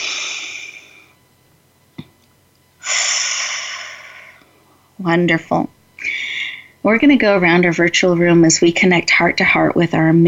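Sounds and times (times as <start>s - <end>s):
group breathing deeply: 0.0s - 1.2s, 2.8s - 4.5s
speech: 5.0s - 5.8s, 6.8s - 10.2s.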